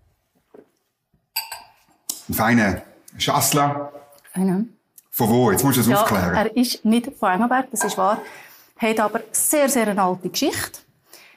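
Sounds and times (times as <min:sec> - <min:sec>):
wine glasses of Chasselas white wine clinking in a toast: 0:01.4 - 0:02.0, 0:07.8 - 0:08.4
speech: 0:02.3 - 0:10.8.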